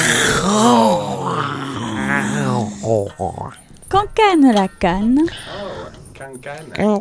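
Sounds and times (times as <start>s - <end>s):
human voice imitating a lion's roar: 0.0s - 3.6s
speech: 4.4s - 5.6s, 6.2s - 6.9s.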